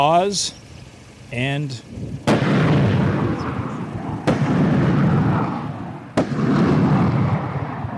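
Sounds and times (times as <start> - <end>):
speech: 0.0 - 0.6, 1.3 - 3.6
roaring rush of military rocket exhaust: 0.0 - 7.9
military rockets firing from a truck-mounted launcher: 2.2 - 7.9.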